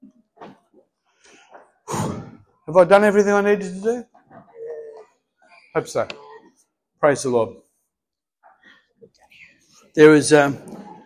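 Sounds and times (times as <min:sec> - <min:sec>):
person sneezing: 0:01.8 - 0:02.4
speech: 0:02.7 - 0:04.1, 0:05.8 - 0:06.2, 0:07.0 - 0:07.6, 0:10.0 - 0:10.8.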